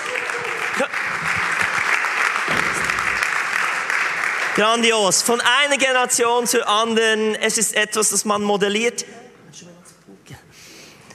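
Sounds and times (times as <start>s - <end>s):
crowd applauding: 0.0s - 5.3s
speech: 0.8s - 1.2s, 4.6s - 9.7s.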